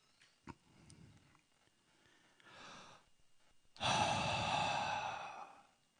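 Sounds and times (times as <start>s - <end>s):
person breathing out onto a group of people: 3.8s - 5.7s.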